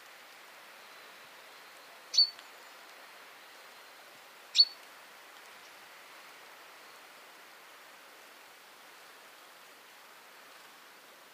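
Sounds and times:
quiet hiss: 0:00.0 - 0:11.3
common chaffinch calls: 0:02.1 - 0:02.4, 0:04.5 - 0:04.8.

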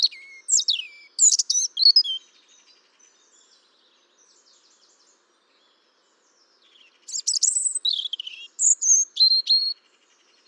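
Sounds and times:
European robin singing: 0:00.0 - 0:02.3, 0:06.7 - 0:09.8.

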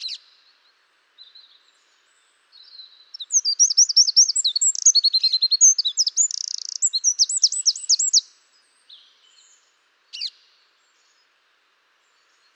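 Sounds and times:
Eurasian wren Troglodytes troglodytes song with high trills and warbled phrases: 0:02.5 - 0:08.3.

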